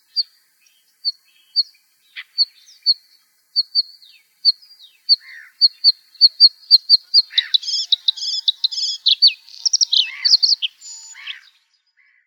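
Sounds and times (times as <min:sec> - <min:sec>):
bluethroat song with ringing and buzzy phrases: 0:05.2 - 0:11.6.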